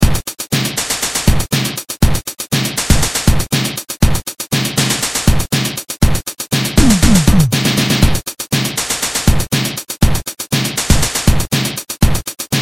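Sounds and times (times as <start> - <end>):
drum and bass beat: 0.0 - 12.6.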